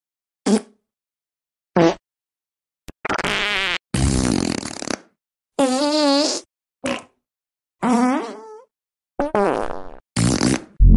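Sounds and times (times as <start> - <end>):
fart sounds: 0.5 - 0.8, 1.8 - 2.0, 3.0 - 7.2, 7.8 - 10.8.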